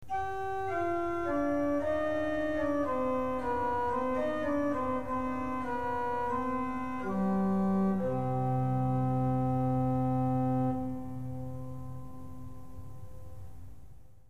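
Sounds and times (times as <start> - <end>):
organ playing octave 4 of 8: 0.1 - 13.3.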